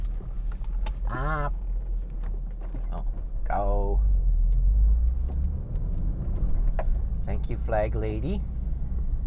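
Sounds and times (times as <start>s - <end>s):
car engine rumbling while driving slowly through roadwork: 0.0s - 9.2s
speech: 7.7s - 8.6s.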